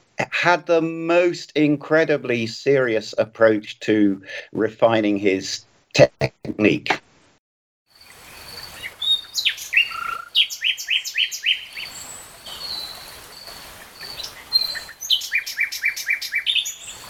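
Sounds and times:
faint hiss: 0.0s - 17.0s
speech: 0.4s - 7.0s
bird singing with trills and whistled phrases: 8.3s - 17.0s.

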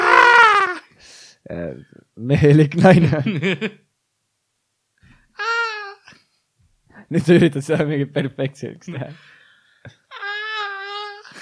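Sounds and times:
voice imitating a crying baby: 0.0s - 0.9s, 5.4s - 6.1s, 10.1s - 11.3s
speech: 1.5s - 3.8s, 7.1s - 10.0s.

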